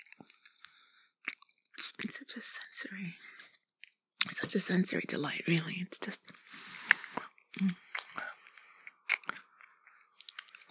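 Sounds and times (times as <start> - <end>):
person chewing a treat: 0.0 - 2.1, 6.4 - 10.6
speech: 2.0 - 3.4, 4.2 - 6.7, 7.6 - 7.8.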